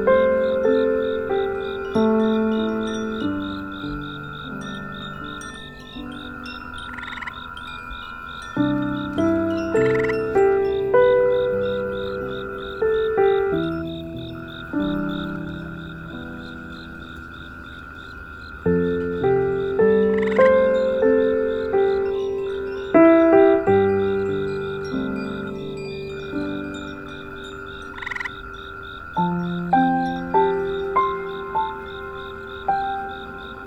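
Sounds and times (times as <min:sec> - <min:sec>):
insects and tree frogs trilling at night in countryside fields: 0:00.0 - 0:33.6
wind chimes ringing gently: 0:00.0 - 0:33.6.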